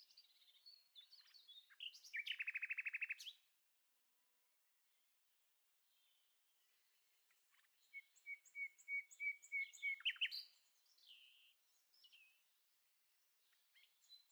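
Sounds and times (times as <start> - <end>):
common nightingale song: 0.0 - 3.4, 7.5 - 12.4.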